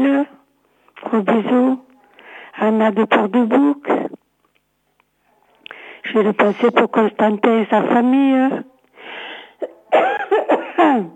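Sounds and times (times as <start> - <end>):
speech: 1.1 - 1.8, 2.6 - 4.0, 6.1 - 8.7, 9.9 - 10.2, 10.8 - 11.1
person coughing: 9.6 - 11.1.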